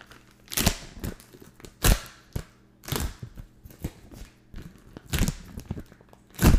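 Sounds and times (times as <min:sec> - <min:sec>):
resealable plastic cheddar cheese package crinkling and snapping as it is opened and pressed shut: 0:00.0 - 0:06.5.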